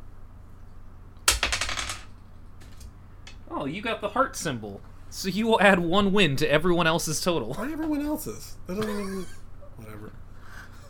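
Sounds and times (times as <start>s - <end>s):
red dice clattering across a hard surface: 1.3s - 2.1s
speech: 3.5s - 10.2s.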